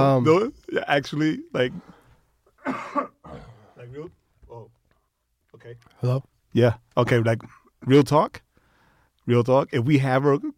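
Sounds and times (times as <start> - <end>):
speech: 0.2 - 1.9, 2.6 - 4.7, 5.6 - 8.4, 9.3 - 10.5
person coughing roughly: 2.6 - 3.9
person making throaty voiced sounds: 2.6 - 4.1.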